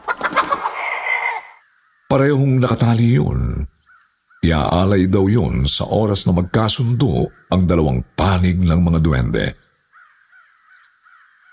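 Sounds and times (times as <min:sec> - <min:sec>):
black rooster crowing: 0:00.0 - 0:01.6
white young hen clucking: 0:00.0 - 0:01.6
speech: 0:02.1 - 0:03.7, 0:04.4 - 0:09.7.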